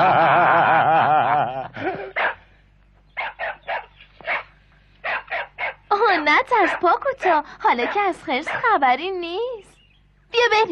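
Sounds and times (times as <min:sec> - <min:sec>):
laughter: 0:00.0 - 0:02.4
small dog yipping with short high-pitched yips: 0:03.2 - 0:07.0
speech: 0:06.4 - 0:09.6, 0:10.4 - 0:10.6.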